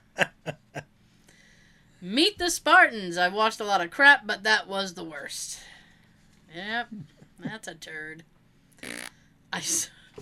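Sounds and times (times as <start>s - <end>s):
speech: 2.0s - 5.7s, 6.5s - 10.0s
fart noises blown with the mouth: 8.8s - 9.2s.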